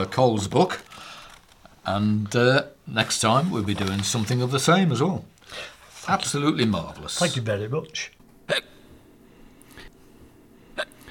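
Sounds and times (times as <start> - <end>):
speech: 0.0 - 0.9, 1.8 - 8.7
sharp voiced hiccups: 8.4 - 8.9, 10.8 - 11.0.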